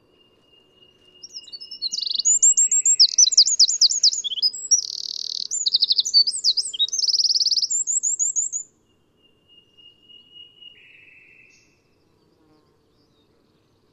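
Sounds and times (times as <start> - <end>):
Eurasian wren singing: 0.0 - 8.7.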